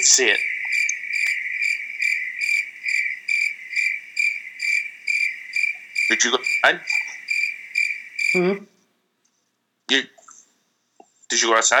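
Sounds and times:
speech: 0.0s - 0.6s, 6.1s - 7.0s, 8.3s - 8.7s, 9.9s - 10.2s, 11.3s - 11.7s
recording of a cricket chirping played back: 0.0s - 8.8s.

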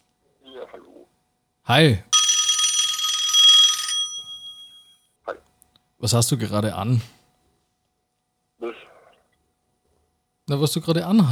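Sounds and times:
speech: 1.7s - 2.1s, 6.0s - 7.2s, 10.5s - 11.3s
telephone ringing with an incoming call: 2.1s - 4.8s.

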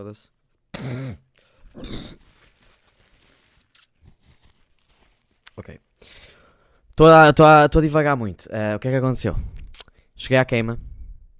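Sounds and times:
speech: 0.0s - 1.2s, 1.8s - 2.3s, 5.6s - 6.3s, 7.0s - 9.6s, 10.2s - 10.9s
throaty phlegm clearing: 0.7s - 2.2s
wet nose blowing: 0.8s - 2.6s
grunting snort: 1.7s - 2.2s.

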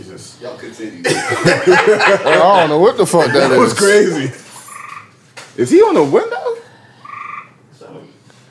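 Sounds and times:
speech: 0.0s - 4.4s, 5.6s - 6.6s
laughter: 1.0s - 4.4s
frog croaking outside a window: 4.8s - 5.1s, 7.0s - 7.6s.

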